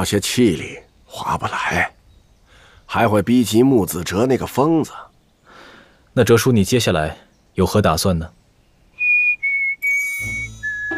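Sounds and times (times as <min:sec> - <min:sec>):
speech: 0:00.0 - 0:02.0, 0:02.9 - 0:05.1, 0:06.2 - 0:08.4
person whistling casually: 0:09.0 - 0:10.9.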